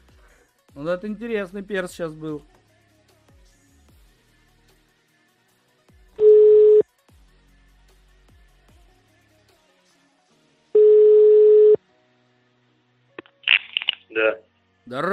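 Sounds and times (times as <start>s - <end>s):
speech: 0.8s - 2.6s
long steady telephone ringing tones while a number is being called: 6.2s - 6.8s, 10.8s - 11.8s.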